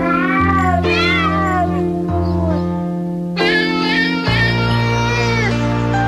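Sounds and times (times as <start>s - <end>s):
cat meowing and yowling: 0.0s - 2.6s, 3.4s - 5.6s.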